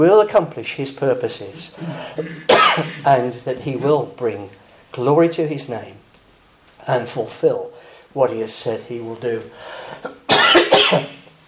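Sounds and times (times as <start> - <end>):
speech: 0.0 - 6.0, 6.8 - 11.2
person coughing: 1.6 - 3.2, 10.0 - 11.3
faint breath: 1.7 - 2.2, 7.8 - 8.1, 9.5 - 10.1.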